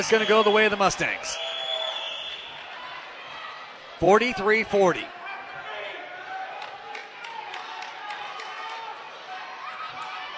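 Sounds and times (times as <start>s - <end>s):
speech: 0.0s - 1.5s, 4.0s - 5.2s
packed crowd at a women's basketball game cheering: 0.0s - 10.3s
sharp claps from basketball fans: 6.6s - 8.8s.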